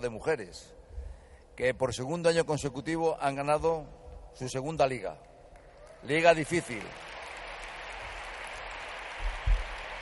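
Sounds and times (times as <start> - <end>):
speech: 0.0 - 0.8, 1.6 - 5.3, 6.0 - 7.1
audience applause: 5.6 - 10.0.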